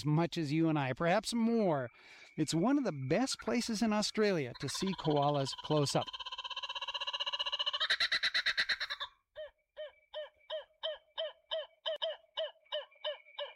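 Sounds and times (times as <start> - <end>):
speech: 0.0 - 6.3
kookaburra laughing call at dusk: 4.5 - 13.5.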